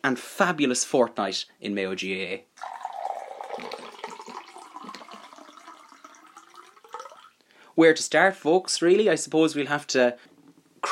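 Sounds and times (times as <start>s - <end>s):
speech: 0.0s - 2.8s, 7.8s - 10.9s
coffee pouring from a pot into a cup: 2.6s - 7.4s.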